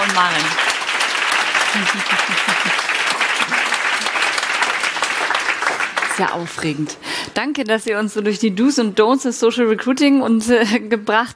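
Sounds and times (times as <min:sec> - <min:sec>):
audience applause: 0:00.0 - 0:07.0
speech: 0:00.2 - 0:00.7, 0:01.7 - 0:04.4, 0:06.2 - 0:11.3
laughter: 0:01.6 - 0:04.3.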